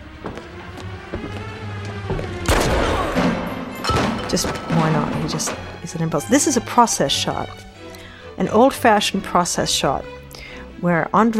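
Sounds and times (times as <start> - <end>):
speech: 1.1 - 1.6, 4.3 - 7.7, 8.4 - 10.2, 10.8 - 11.3
gunshots fired in a film murder scene: 2.4 - 6.3.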